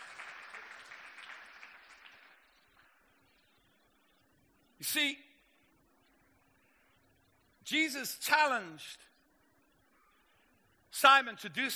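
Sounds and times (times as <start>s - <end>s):
audience clapping: 0.0s - 3.0s
speech: 4.8s - 5.3s, 7.7s - 9.1s, 11.0s - 11.7s.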